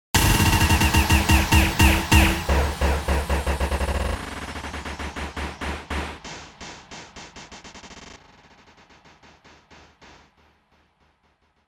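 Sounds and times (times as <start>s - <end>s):
glitched button burst: 0.2s - 4.5s.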